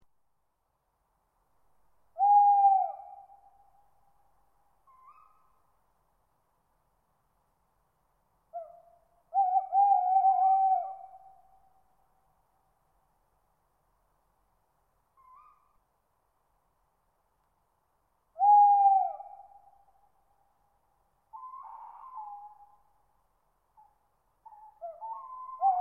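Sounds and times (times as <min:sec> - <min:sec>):
tawny owl high-pitched calls: 0:02.2 - 0:03.8, 0:04.8 - 0:05.6, 0:08.5 - 0:11.8, 0:15.1 - 0:15.8, 0:18.4 - 0:20.2, 0:21.3 - 0:23.0, 0:23.7 - 0:25.7.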